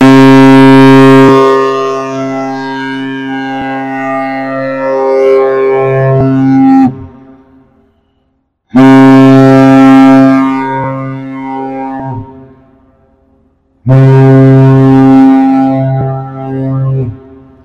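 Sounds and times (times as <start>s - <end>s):
large ship's horn sounding a passing signal: 0.0s - 17.6s.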